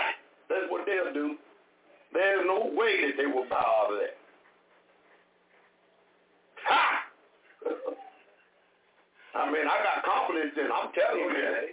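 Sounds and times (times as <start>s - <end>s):
speech: 0.9s - 1.5s, 2.1s - 4.2s, 9.4s - 11.7s
person sneezing: 6.6s - 7.2s.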